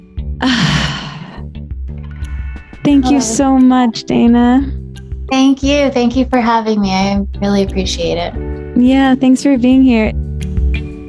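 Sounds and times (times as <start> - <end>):
deep breath drawn in: 0.4 - 1.5
speech: 2.9 - 10.2.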